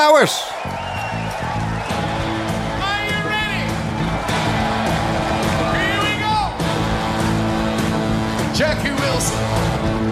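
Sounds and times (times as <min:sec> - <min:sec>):
audience cheering: 0:00.0 - 0:07.4
speech: 0:00.2 - 0:00.8, 0:08.6 - 0:10.1
full band playing live at a concert: 0:01.4 - 0:10.1.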